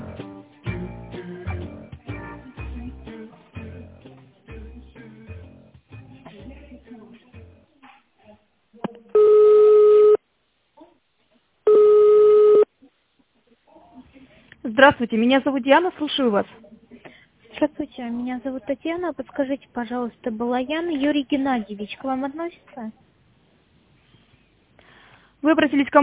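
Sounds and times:
ringback tones on a phone line: 0:09.2 - 0:10.2, 0:11.7 - 0:12.7
speech: 0:14.8 - 0:16.7, 0:18.0 - 0:23.0, 0:25.5 - 0:26.0.

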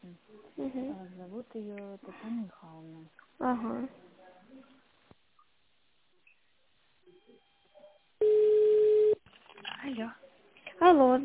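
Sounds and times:
speech: 0:00.6 - 0:04.0, 0:09.8 - 0:10.2, 0:10.8 - 0:11.2
telephone ringback tone while a call to an office line connects: 0:08.2 - 0:09.2.

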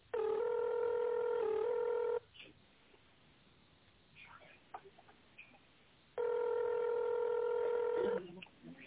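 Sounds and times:
long steady buzzy telephone tone on a line: 0:00.0 - 0:02.4, 0:06.1 - 0:08.3.

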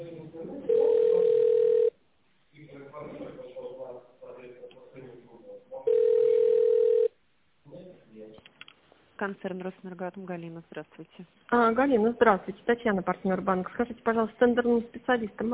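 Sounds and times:
long low telephone line beeps while a call is transferred: 0:00.7 - 0:01.9, 0:05.9 - 0:07.1
speech: 0:09.2 - 0:15.5.

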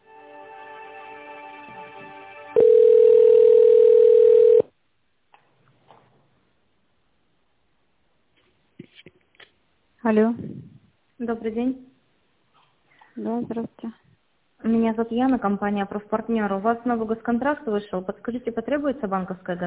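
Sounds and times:
telephone dial tone while calling an accounting department: 0:02.6 - 0:04.7
speech: 0:10.1 - 0:10.6, 0:11.2 - 0:11.9, 0:13.2 - 0:14.0, 0:14.6 - 0:19.6.

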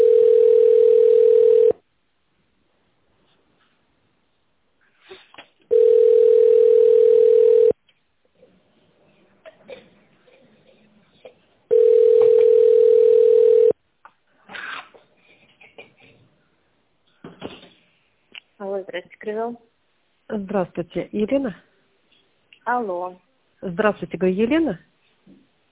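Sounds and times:
telephone ringback tone while a call is transferred to a mobile phone: 0:00.0 - 0:01.7, 0:05.7 - 0:07.8, 0:11.7 - 0:13.8
speech: 0:20.4 - 0:21.7, 0:22.7 - 0:24.9.

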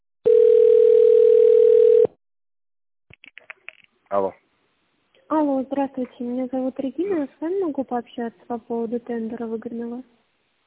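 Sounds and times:
tinny shifting telephone line tones during a call transfer: 0:00.3 - 0:02.1
speech: 0:05.9 - 0:10.2.

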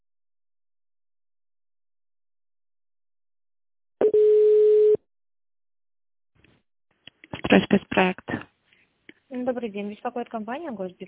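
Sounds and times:
telephone line tone while a call to a business line is transferred: 0:04.0 - 0:05.0
speech: 0:07.5 - 0:08.5, 0:09.3 - 0:11.0.

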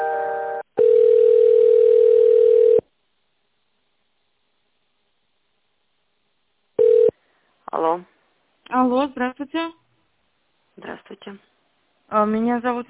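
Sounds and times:
telephone line tone while a call is transferred: 0:00.0 - 0:02.8, 0:06.8 - 0:07.2
speech: 0:08.9 - 0:09.8, 0:10.8 - 0:11.5, 0:12.1 - 0:12.8.

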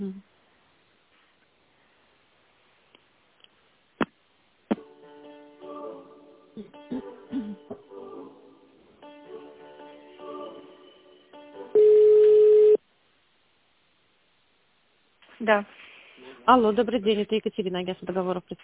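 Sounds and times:
speech: 0:00.0 - 0:00.3, 0:15.5 - 0:15.8, 0:16.5 - 0:18.6
melodic telephone hold tones during call transfer: 0:11.8 - 0:12.8.

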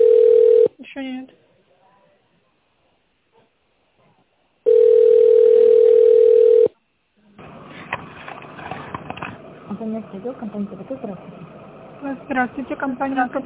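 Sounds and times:
telephone ringing tone while a call connects: 0:00.0 - 0:00.7, 0:04.6 - 0:06.8
speech: 0:10.1 - 0:13.4.

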